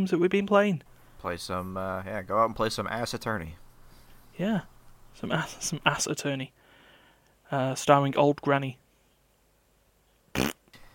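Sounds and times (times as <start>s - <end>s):
speech: 0.0s - 3.6s, 4.4s - 6.6s, 7.5s - 8.8s
loud short brassy fart: 10.3s - 10.8s.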